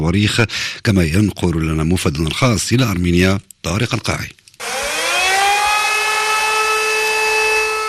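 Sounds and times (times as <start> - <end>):
speech: 0.0 - 4.4
air raid warning sirens wailing in Stepanakert: 4.6 - 7.8.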